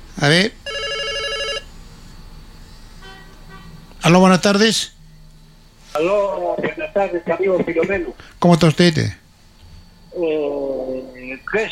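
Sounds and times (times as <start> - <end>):
speech: 0.2 - 0.6, 4.1 - 5.0, 6.0 - 9.2, 10.2 - 11.6
telephone ringing for an incoming call: 0.6 - 1.7.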